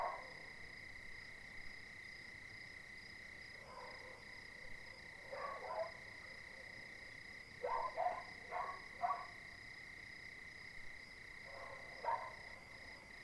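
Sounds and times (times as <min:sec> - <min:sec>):
several dogs barking at night in Cilaos, Réunion: 0:00.0 - 0:00.3, 0:05.3 - 0:06.0, 0:07.6 - 0:09.3, 0:11.5 - 0:12.4.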